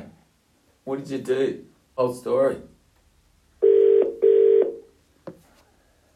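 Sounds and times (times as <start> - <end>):
speech: 1.1 - 2.7
steady electronic phone tones: 3.6 - 4.9.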